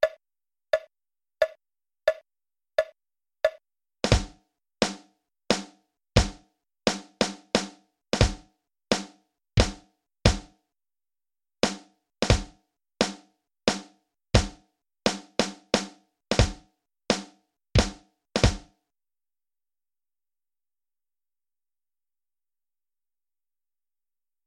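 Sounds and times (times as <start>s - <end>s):
drums: 4.0s - 10.5s, 11.6s - 18.7s.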